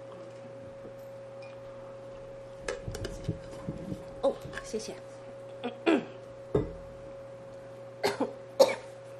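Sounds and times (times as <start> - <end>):
faint steady electrical hum: 0.0 - 9.1
speech: 4.6 - 5.8
person coughing: 8.0 - 9.0.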